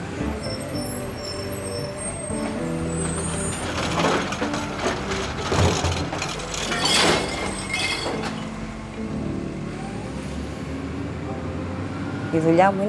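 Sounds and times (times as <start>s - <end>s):
air-brake releases hissing: 0.0s - 8.1s
garbage truck engine rumbling: 0.0s - 12.8s
bins clattering as they are emptied: 0.1s - 8.7s
speech: 12.4s - 12.8s.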